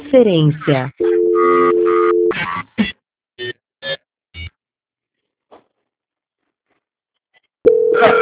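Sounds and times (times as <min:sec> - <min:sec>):
speech: 0:00.1 - 0:01.0
telephone line tones from an unanswered call: 0:01.0 - 0:02.3, 0:07.7 - 0:08.1.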